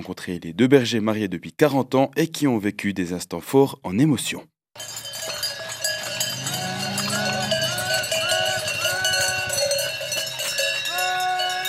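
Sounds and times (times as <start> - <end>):
speech: 0.0 - 5.1
cowbells on a herd of heifers leaving the alpine pasture: 4.8 - 11.6.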